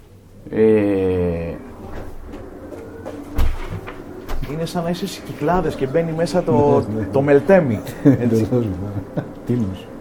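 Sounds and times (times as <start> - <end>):
low rumbling: 0.2 - 10.0
speech: 0.4 - 0.8, 4.6 - 9.9
door closing thud: 3.1 - 4.6
laughter: 6.4 - 9.9.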